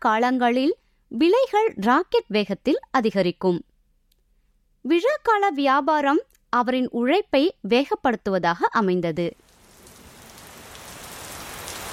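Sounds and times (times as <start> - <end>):
speech: 0.0 - 3.7, 4.8 - 9.4
steady rain on a hard surface: 9.4 - 11.9.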